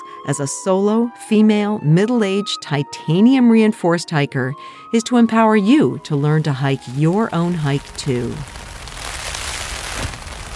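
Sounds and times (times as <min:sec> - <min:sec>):
speech: 0:00.2 - 0:08.6
heavy rain lashing against bothy windows in the Western Highlands of Scotland: 0:06.8 - 0:10.5.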